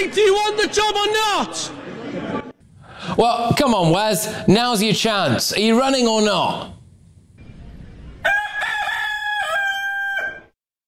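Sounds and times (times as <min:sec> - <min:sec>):
speech: 0:00.0 - 0:02.4, 0:03.2 - 0:06.8
laughter: 0:01.5 - 0:02.6
rooster crowing: 0:08.2 - 0:10.6.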